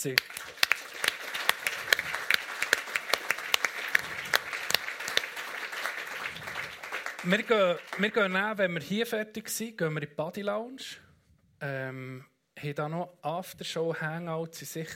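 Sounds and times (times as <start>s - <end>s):
speech: 0.0s - 0.6s, 7.2s - 14.9s
live audience applause: 0.0s - 8.3s.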